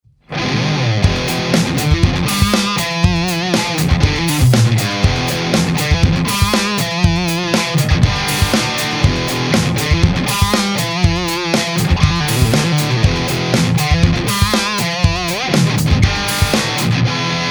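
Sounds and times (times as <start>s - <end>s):
guitar amplifier recorded through a microphone: 0.2s - 17.5s.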